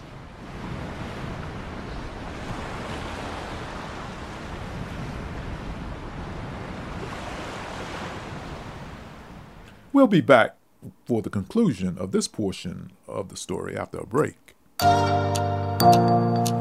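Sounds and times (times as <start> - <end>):
wind rumble: 0.0 - 9.7
ocean surf waves breaking on the shore: 0.0 - 10.0
speech: 10.0 - 16.5.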